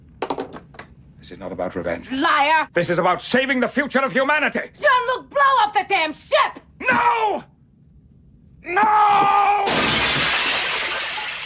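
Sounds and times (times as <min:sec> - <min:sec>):
speech: 0:01.2 - 0:07.5, 0:08.6 - 0:09.8
glass cabinet holding gold models smashed with a phaser rifle: 0:09.7 - 0:11.4.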